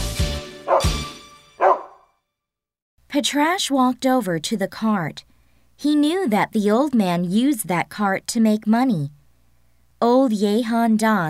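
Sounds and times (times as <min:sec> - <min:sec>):
dog barking sharply: 0:00.7 - 0:01.0, 0:01.6 - 0:02.0
speech: 0:03.1 - 0:09.2, 0:10.0 - 0:11.2.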